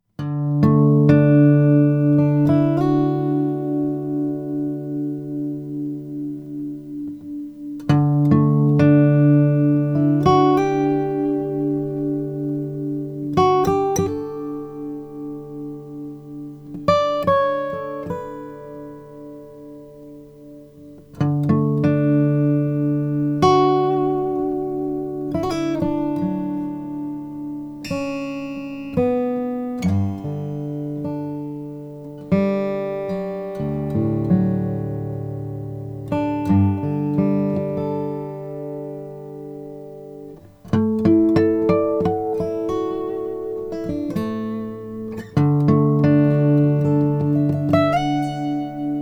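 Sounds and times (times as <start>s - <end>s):
Taylor 710 Brazilian rosewood guitar: 0.0s - 49.0s.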